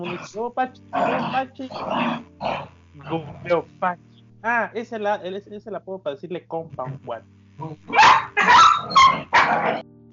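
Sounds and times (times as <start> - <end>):
dogs barking and snarling: 0.0 - 3.4, 7.9 - 9.8
speech: 0.0 - 10.1.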